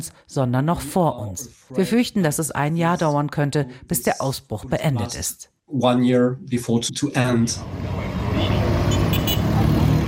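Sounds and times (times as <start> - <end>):
speech: 0.0 - 8.8
street traffic of motor vehicles in the provincial capital Bunia: 7.2 - 10.0
motor vehicles honking in Bunia: 7.8 - 10.0.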